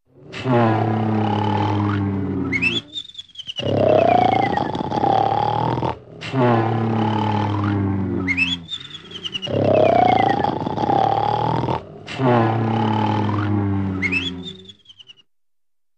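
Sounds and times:
men snoring: 0.2 - 2.9, 3.6 - 14.6
person snorting: 3.6 - 8.1, 8.7 - 14.5.

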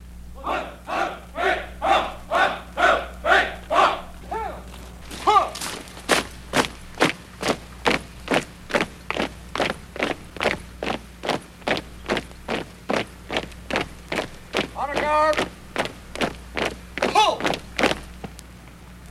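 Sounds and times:
troops marching: 0.3 - 18.5
person counting cadence for marching troops: 0.4 - 5.8, 14.7 - 15.6, 17.0 - 17.6.

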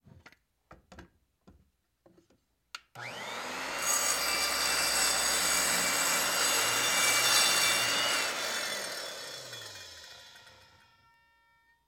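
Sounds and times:
electric circular saw switched on and running: 3.0 - 11.4.

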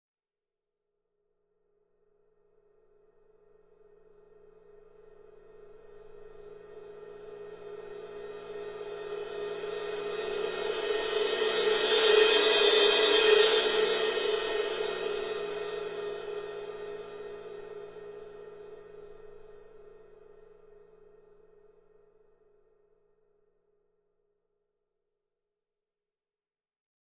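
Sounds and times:
large cymbal: 3.8 - 22.1.

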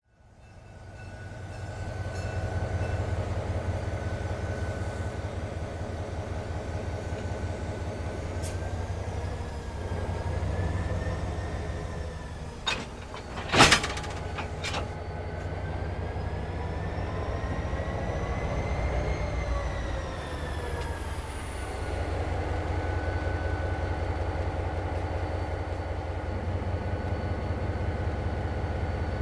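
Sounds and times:
train station ambience: 0.0 - 29.2.

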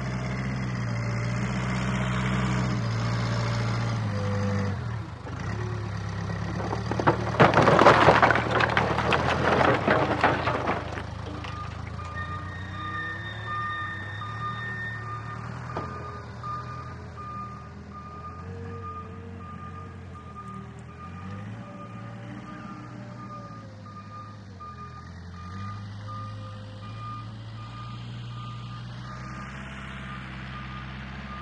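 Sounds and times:
John Deere 750 bulldozer beeps: 0.2 - 31.4.

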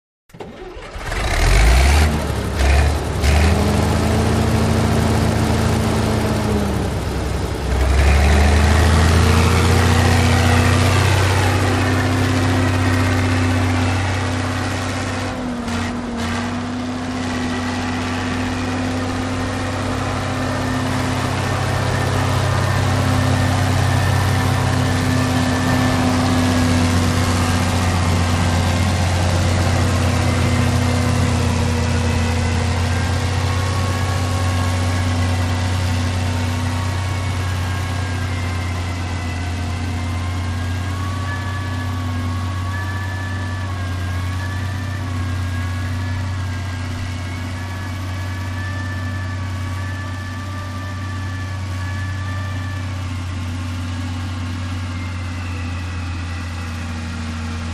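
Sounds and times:
bulldozer starting up, working, idling and switching off: 0.3 - 57.7.

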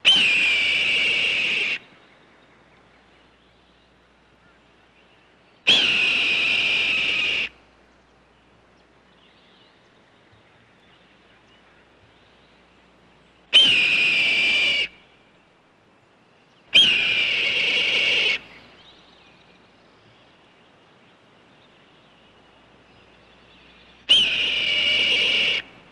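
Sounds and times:
hawk screaming: 0.0 - 1.8, 5.7 - 7.5, 13.6 - 14.9, 16.8 - 18.4, 24.1 - 25.7.

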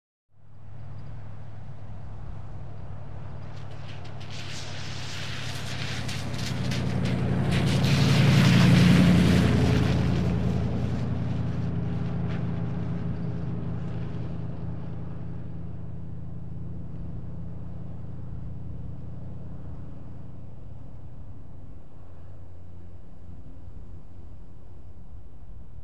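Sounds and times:
medium car passing by in wet traffic: 2.7 - 16.8.

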